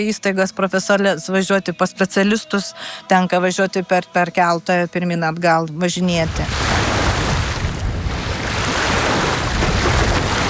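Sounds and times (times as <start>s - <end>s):
speech: 0.0s - 6.7s
wind noise: 6.2s - 10.4s
waves of the Curonian Lagoon breaking on the shore at Pervalka: 6.3s - 10.4s.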